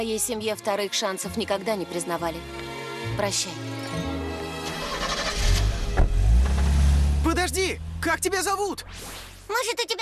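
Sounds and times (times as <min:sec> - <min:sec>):
speech: 0:00.0 - 0:04.1, 0:07.4 - 0:10.0
car engine starting and revving as the vehicle pulls away: 0:04.6 - 0:08.3.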